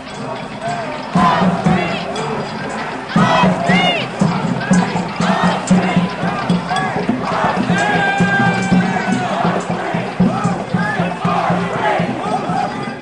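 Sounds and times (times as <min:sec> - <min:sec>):
large crowd of protesters shouting in a park: 0:00.0 - 0:13.0.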